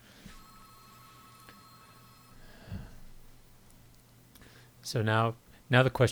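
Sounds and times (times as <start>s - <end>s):
landline telephone ringing: 0.0s - 2.6s
speech: 4.9s - 6.1s.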